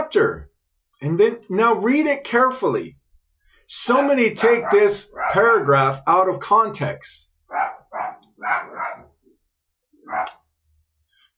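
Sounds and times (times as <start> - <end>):
speech: 0.1 - 3.0, 3.7 - 9.0, 10.1 - 10.4
dog barking outside: 4.4 - 5.6, 7.5 - 9.2, 10.0 - 10.4.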